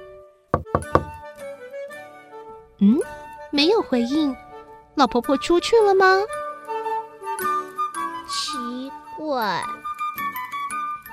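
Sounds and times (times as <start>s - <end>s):
soft steady music: 0.0s - 11.1s
knocking on a door at the top of a stairway: 0.6s - 1.2s
speech: 2.8s - 4.4s, 5.0s - 6.4s, 9.3s - 9.8s.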